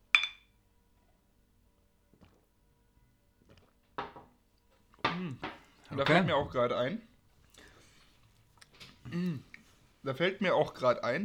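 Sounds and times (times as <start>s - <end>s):
glasses clinking in a toast: 0.2s - 0.5s
speech: 6.0s - 7.1s, 9.1s - 11.2s.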